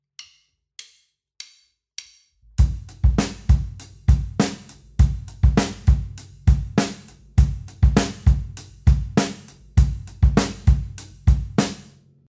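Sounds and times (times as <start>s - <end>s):
clave rhythm on drums: 2.6s - 11.9s.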